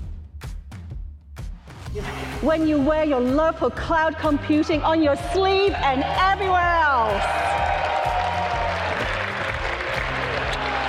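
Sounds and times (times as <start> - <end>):
speech: 2.0 - 7.6
applause from a large audience: 7.0 - 10.8.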